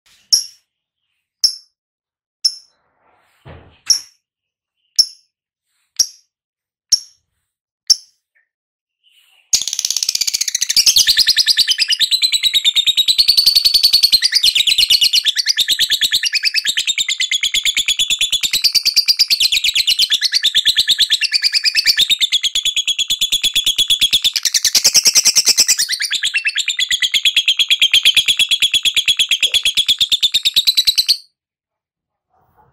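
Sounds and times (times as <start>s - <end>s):
lovebird chattering: 9.6s - 31.2s.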